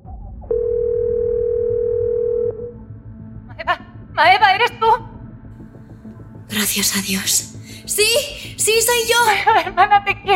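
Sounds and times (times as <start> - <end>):
phone ringback tone through a speakerphone: 0.5 - 2.7
speech: 4.2 - 4.8, 6.6 - 10.3.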